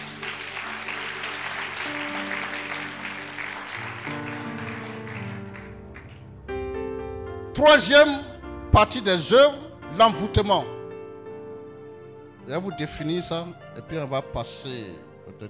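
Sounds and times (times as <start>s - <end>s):
church congregation applauding: 0.0s - 6.4s
speech: 7.6s - 10.7s, 12.5s - 15.4s.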